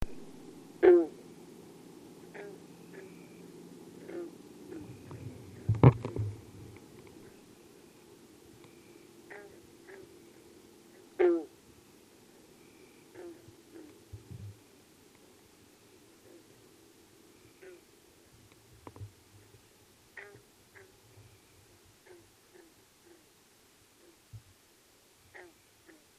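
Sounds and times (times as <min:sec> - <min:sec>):
bullfrog: 0:00.8 - 0:01.2, 0:02.2 - 0:08.0, 0:08.7 - 0:11.6, 0:12.6 - 0:14.4, 0:16.2 - 0:16.6, 0:17.4 - 0:17.9, 0:20.2 - 0:23.4, 0:24.0 - 0:24.3, 0:25.3 - 0:26.1.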